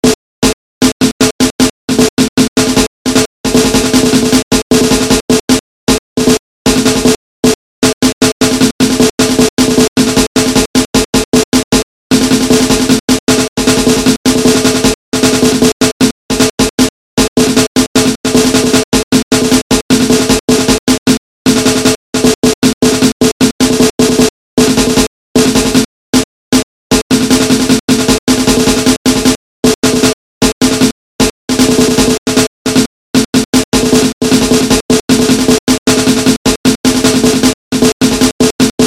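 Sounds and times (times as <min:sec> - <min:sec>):
snare drum loops: 0:00.0 - 0:38.8.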